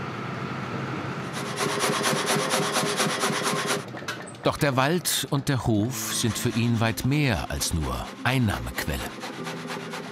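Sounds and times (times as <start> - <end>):
constant machine drone: 0.0 - 4.1, 5.2 - 10.1
mechanical saw in a sawmill cutting wood: 1.2 - 3.9, 5.7 - 10.1
speech: 4.4 - 9.2.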